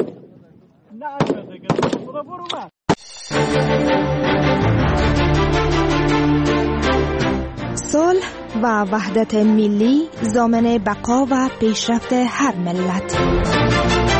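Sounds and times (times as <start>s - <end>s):
speech: 1.0s - 3.8s, 8.2s - 13.9s
sharp loud gunshots at shooting practice: 1.2s - 2.2s
steady music: 3.0s - 14.1s.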